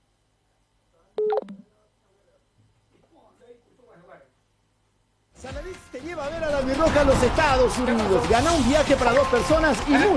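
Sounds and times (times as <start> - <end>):
telephone keypad dialing tones: 1.2 - 1.6
speech: 5.7 - 10.1.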